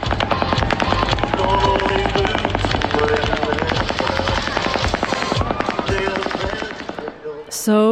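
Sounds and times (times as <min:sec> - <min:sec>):
rapid automatic gunfire from a fully automatic assault weapon: 0:00.0 - 0:07.5.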